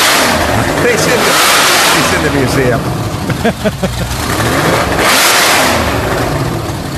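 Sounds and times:
Shelby Daytona race car engine revving in a museum: 0.0s - 6.9s
speech: 2.3s - 5.0s
laughter: 3.2s - 4.2s.

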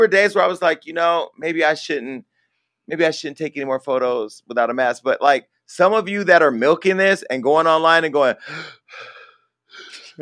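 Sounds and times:
speech: 0.0s - 2.3s, 2.9s - 9.1s
voice imitating labored breathing with harsh raspy gasps: 8.4s - 10.2s.

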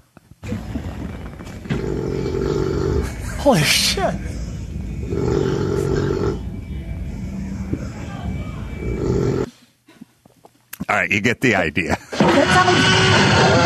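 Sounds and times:
loud snoring: 0.4s - 3.2s, 4.7s - 6.6s, 8.8s - 9.5s
speech: 3.4s - 4.4s, 11.0s - 13.6s.

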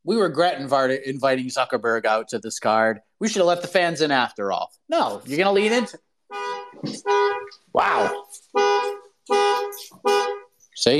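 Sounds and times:
speech: 0.0s - 10.2s, 10.8s - 10.9s
old Explorer car alarm honking, set off by sitting on keys: 6.3s - 10.6s.

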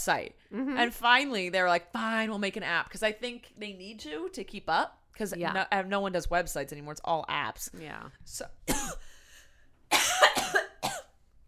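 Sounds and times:
speech: 0.0s - 9.1s
person having a harsh coughing fit: 8.7s - 9.1s, 9.9s - 11.2s.

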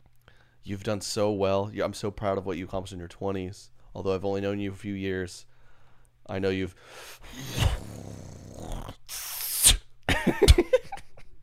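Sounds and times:
speech: 0.6s - 5.5s, 6.3s - 8.3s
person spitting into a hand: 7.0s - 9.9s.

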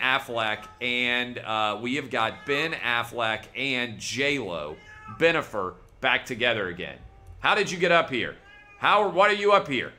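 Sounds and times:
speech: 0.1s - 9.9s
cat meowing: 0.2s - 3.2s, 4.2s - 5.5s, 6.9s - 9.2s.

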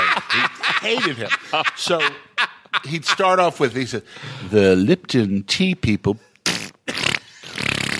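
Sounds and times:
laughter: 0.0s - 3.8s
speech: 0.3s - 6.3s
voice imitating a wet dribbly fart with the mouth: 6.4s - 7.9s.

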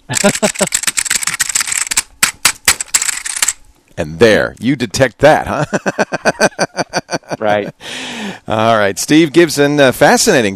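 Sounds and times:
laughter: 0.0s - 1.0s, 5.3s - 8.0s
fast loud typing on a keyboard: 0.1s - 3.6s
speech: 0.2s - 0.8s, 4.0s - 6.7s, 7.4s - 10.5s.

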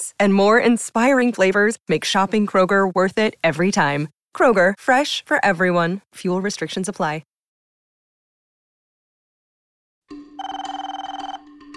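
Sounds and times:
speech: 0.1s - 7.3s
old-fashioned telephone bell ringing: 10.1s - 11.7s.

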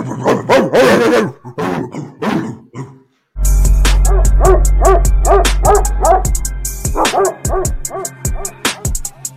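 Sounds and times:
several dogs barking and yipping: 0.3s - 1.4s, 4.0s - 9.1s.

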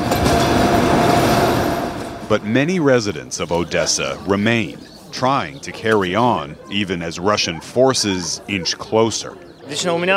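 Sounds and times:
passenger train pulling away in Odessa: 0.0s - 3.2s
speech: 2.3s - 10.1s.

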